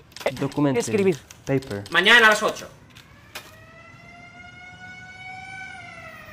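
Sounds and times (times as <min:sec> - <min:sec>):
speech: 0:00.2 - 0:02.8
factory shift-change alarm siren wailing: 0:01.9 - 0:06.3.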